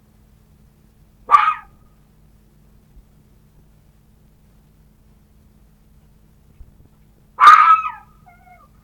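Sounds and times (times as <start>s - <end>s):
red fox harsh raspy yelps: 1.2s - 1.8s, 7.4s - 8.8s.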